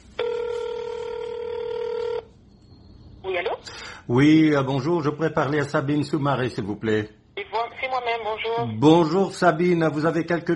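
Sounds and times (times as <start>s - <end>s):
faint noise: 0.0s - 10.5s
telephone ringing tone as a call is placed: 0.2s - 2.4s
speech: 4.1s - 7.2s, 8.2s - 10.5s.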